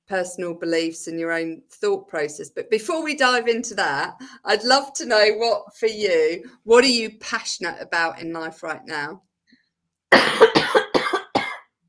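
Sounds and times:
speech: 0.1s - 9.3s
harsh coughs from a throat tickle: 10.1s - 11.7s.

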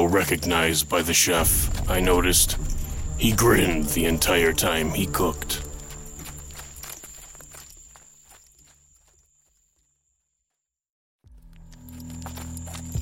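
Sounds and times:
speech: 0.0s - 5.6s
low rumbling sound: 0.1s - 7.8s
horse hooves clip-clopping while walking: 1.5s - 9.9s, 11.3s - 12.9s.

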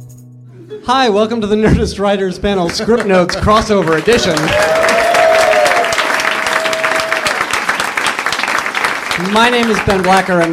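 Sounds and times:
speech: 0.7s - 5.0s, 9.2s - 10.5s
audience applause in a full room: 2.7s - 10.5s.

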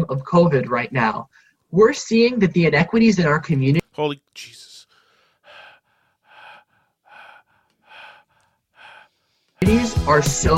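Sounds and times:
speech: 0.1s - 4.7s, 9.7s - 10.5s
heavy breathing close into a microphone: 4.8s - 9.6s.

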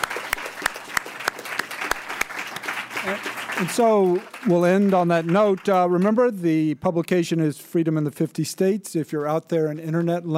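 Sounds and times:
audience applauding: 0.0s - 6.4s
speech: 3.0s - 10.3s.

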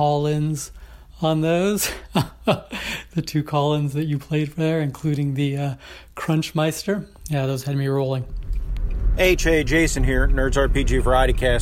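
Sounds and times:
speech: 0.0s - 8.5s, 9.2s - 11.6s
laughter: 1.8s - 3.2s
road noise rumble inside a moving car: 8.2s - 11.6s.

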